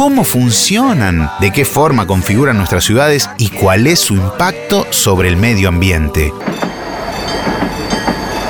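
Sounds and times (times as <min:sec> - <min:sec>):
speech: 0:00.0 - 0:07.7
passenger train running on rails: 0:06.3 - 0:08.4
train wheels clacking over track joints: 0:06.4 - 0:08.4.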